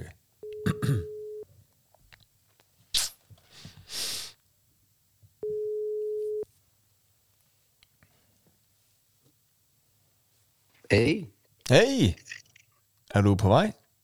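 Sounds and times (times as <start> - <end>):
phone ringback tone: 0.4 - 1.4, 5.4 - 6.4
speech: 10.9 - 12.3, 13.2 - 13.8.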